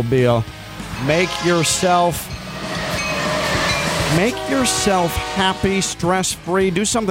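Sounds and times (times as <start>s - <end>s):
speech: 0.0s - 2.4s, 4.1s - 7.0s
passenger train rolling past: 0.4s - 7.0s
passenger train horn blasts: 0.9s - 6.5s.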